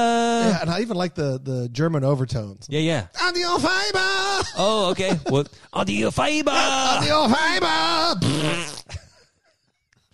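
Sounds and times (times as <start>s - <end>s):
laughter: 0.0s - 1.1s, 3.4s - 9.2s
speech: 0.0s - 9.0s
loud buzzy fart sound effect: 8.2s - 8.9s.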